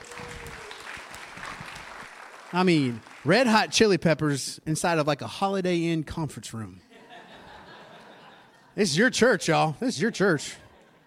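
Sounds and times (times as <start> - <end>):
faint cheers: 0.0 - 1.6
audience applause for the band at a church service: 0.0 - 3.8
speech: 2.5 - 6.9, 8.8 - 10.6
laughter: 6.9 - 9.5, 10.2 - 11.0.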